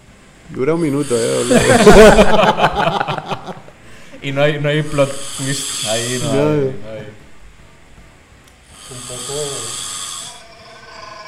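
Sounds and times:
speech: 0.5s - 3.6s, 4.2s - 7.2s
person snoring: 1.0s - 2.0s, 4.9s - 6.6s, 8.7s - 11.2s
laughter: 1.4s - 3.8s
quiet breathing: 3.8s - 4.3s, 5.0s - 6.4s, 8.6s - 11.2s.

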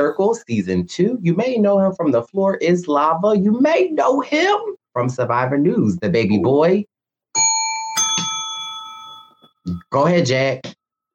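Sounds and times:
speech: 0.0s - 6.9s, 9.6s - 10.8s
doorbell ding-dong chime: 7.4s - 9.6s.

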